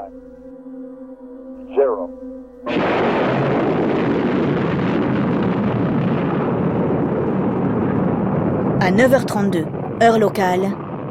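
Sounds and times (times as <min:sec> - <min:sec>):
low hum: 0:00.0 - 0:10.4
speech: 0:00.1 - 0:00.4, 0:08.9 - 0:10.8
Apollo 11 rocket engines roaring at liftoff from the launch site: 0:02.7 - 0:11.0.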